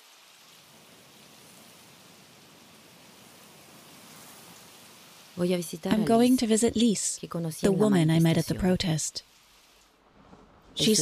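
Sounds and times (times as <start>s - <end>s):
steady rain falling: 0.0s - 10.9s
speech: 5.4s - 9.3s, 10.8s - 10.9s.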